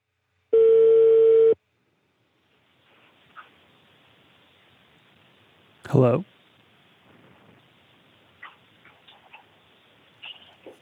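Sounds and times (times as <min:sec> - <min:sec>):
phone ringing tone from call-back attempt: 0:00.6 - 0:01.6
faint hiss on the phone line: 0:01.6 - 0:10.8
speech: 0:05.9 - 0:06.3.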